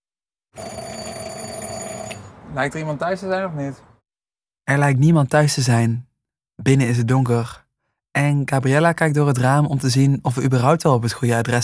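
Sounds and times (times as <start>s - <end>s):
electric doorbell ringing at a house on the outskirts of a village: 0.6s - 2.3s
speech: 2.5s - 3.9s, 4.7s - 7.6s, 8.2s - 11.6s.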